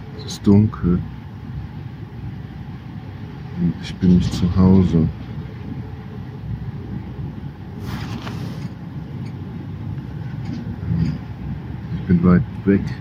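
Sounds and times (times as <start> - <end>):
speech: 0.2 - 1.2, 3.6 - 5.2, 12.1 - 12.9
train rattling: 4.0 - 12.9.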